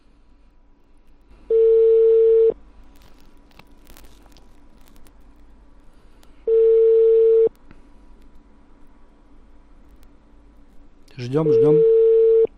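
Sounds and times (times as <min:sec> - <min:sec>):
phone call ringback tone to a credit collection line: 0:01.5 - 0:02.6, 0:06.5 - 0:07.5, 0:11.5 - 0:12.5
speech: 0:11.2 - 0:11.9.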